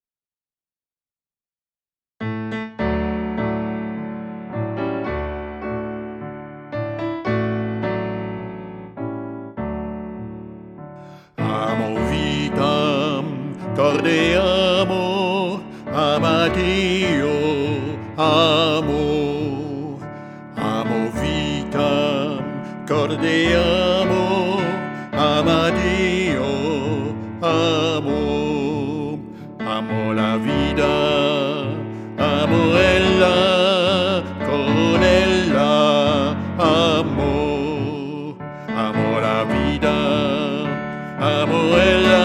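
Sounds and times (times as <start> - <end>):
piano: 2.2 - 42.2
person singing: 11.1 - 42.2.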